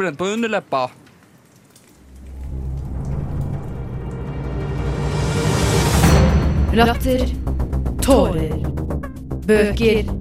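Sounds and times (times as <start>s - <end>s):
speech: 0.0s - 1.0s, 6.8s - 8.7s, 9.5s - 10.1s
heavy rain hissing in a storm: 2.0s - 7.3s
deep rolling thunder rumbling in a storm: 2.1s - 8.1s.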